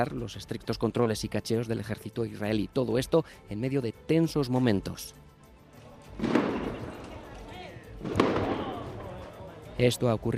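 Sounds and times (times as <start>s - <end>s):
speech: 0.0s - 5.3s, 8.0s - 8.3s, 9.8s - 10.3s
street noise: 5.2s - 10.3s
murmur of voices: 5.6s - 10.3s
firework explosions echoing in narrow city streets: 6.2s - 7.2s, 8.0s - 9.1s.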